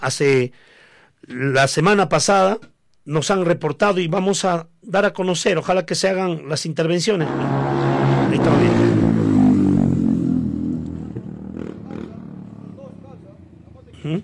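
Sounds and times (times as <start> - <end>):
speech: 0.0 - 9.0, 14.0 - 14.2
motorcycle engines revving during street racing: 7.2 - 14.2
street noise: 7.3 - 14.2.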